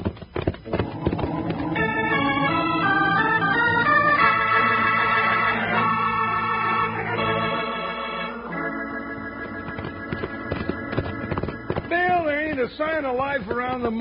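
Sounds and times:
galloping horse hooves clip-clopping: 0.0 - 2.6, 9.4 - 14.0
sustained musical score: 0.9 - 11.8
speech: 13.0 - 14.0.

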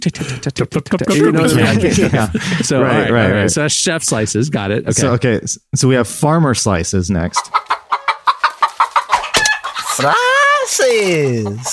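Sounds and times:
speech: 0.0 - 7.7, 10.0 - 11.7
laughter: 0.2 - 3.6, 9.8 - 11.7
chicken clucking: 7.3 - 11.7.

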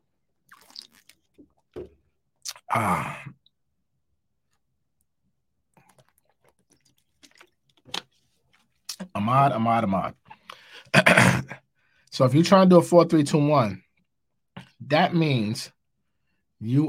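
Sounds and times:
soft mouth clicks and gulps: 0.4 - 2.8, 5.7 - 9.1
person sipping and swallowing water: 0.4 - 3.6, 5.7 - 9.1
speech: 2.7 - 3.2, 9.3 - 10.2, 12.2 - 13.8, 14.8 - 15.8, 16.6 - 16.8.

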